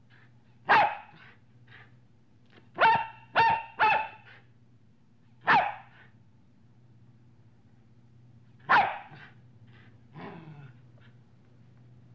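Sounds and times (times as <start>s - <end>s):
steady low hum: 0.0s - 12.1s
medium-sized dog barking: 0.6s - 1.3s, 2.8s - 4.4s, 5.4s - 6.0s, 8.6s - 9.3s.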